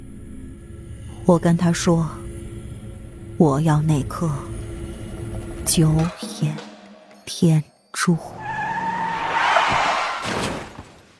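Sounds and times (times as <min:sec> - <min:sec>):
speech: 0:01.3 - 0:02.2, 0:03.4 - 0:04.5, 0:05.6 - 0:06.7, 0:07.3 - 0:08.4
car brakes and tires screeching as a car drifts across a road: 0:08.2 - 0:10.9.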